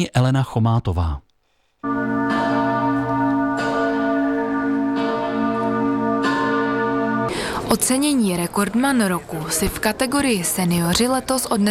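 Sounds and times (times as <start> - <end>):
speech: 0.0 - 1.2, 7.7 - 11.6
large church bells ringing: 1.8 - 10.6.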